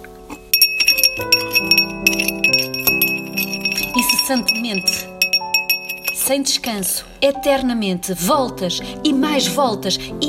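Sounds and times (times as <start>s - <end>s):
spoon tapping against a drinking glass: 0.4s - 6.4s
speech: 4.3s - 5.1s, 6.3s - 10.2s.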